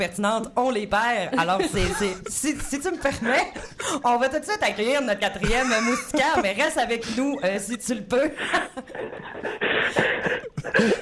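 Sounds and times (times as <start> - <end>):
speech: 0.0 - 11.0
laughter: 1.4 - 4.0, 5.4 - 11.0
caller's heavy rapid panting over a band-limited phone line: 8.5 - 11.0.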